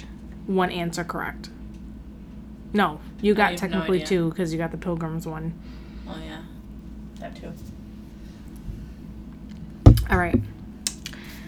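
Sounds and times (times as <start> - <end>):
speech: 0.5 - 1.6, 2.7 - 6.5, 7.2 - 7.8, 10.1 - 10.5
phone set down against a microphone knocking: 9.9 - 10.7
low steady rumble: 9.9 - 10.8.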